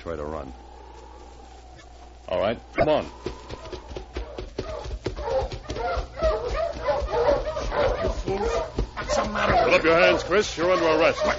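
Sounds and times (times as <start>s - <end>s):
speech: 0.0s - 0.7s, 2.3s - 3.5s, 8.3s - 11.3s
dog barking and yipping: 4.6s - 11.3s.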